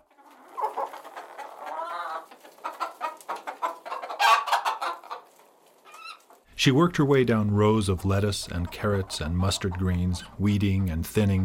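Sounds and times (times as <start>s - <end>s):
chickens clucking in a big backyard on a warm day: 0.0s - 6.5s, 7.1s - 11.4s
drawn-out chicken squawk: 0.1s - 6.4s
speech: 6.6s - 11.4s.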